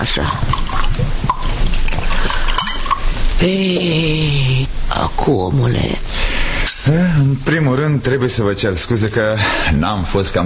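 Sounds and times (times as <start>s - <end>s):
speech: 0.0s - 1.2s, 3.4s - 4.3s, 5.2s - 6.1s, 6.9s - 10.4s
drink being poured into glasses: 0.0s - 3.5s
small clinks of glasses: 1.3s - 3.1s.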